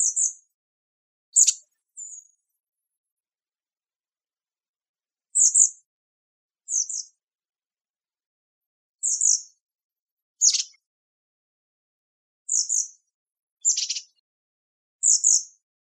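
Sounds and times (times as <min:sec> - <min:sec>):
bird mechanical double chirp calls: 0:10.4 - 0:10.8, 0:13.7 - 0:14.2.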